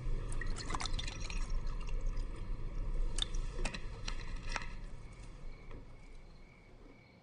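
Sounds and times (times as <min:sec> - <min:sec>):
water pouring into a glass: 0:00.2 - 0:04.8.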